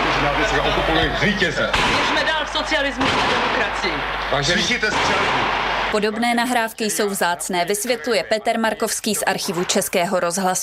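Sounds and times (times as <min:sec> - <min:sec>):
hum of an old archival radio recording: 0:00.0 - 0:10.6
speech: 0:01.0 - 0:10.6
gunfire crackling in an old archival radio recording: 0:01.7 - 0:06.1.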